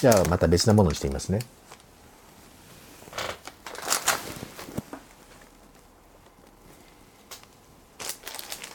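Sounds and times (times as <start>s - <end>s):
speech: 0.0s - 1.8s
outer plastic bag of an opened package crinkling while handled: 0.0s - 1.9s, 3.4s - 6.6s, 7.3s - 8.7s.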